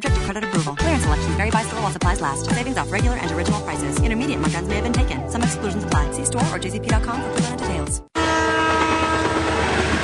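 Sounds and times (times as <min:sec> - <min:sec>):
speech: 0:00.3 - 0:08.1
loud sustained train horn: 0:08.2 - 0:10.0
heavy rumble of a passing train: 0:08.4 - 0:10.0.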